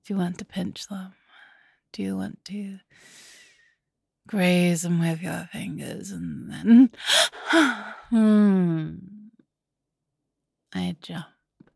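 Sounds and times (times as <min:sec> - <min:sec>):
speech: 0:00.1 - 0:01.2, 0:01.9 - 0:03.3, 0:04.3 - 0:09.1, 0:10.7 - 0:11.4
woman gasping, startled: 0:07.0 - 0:08.3.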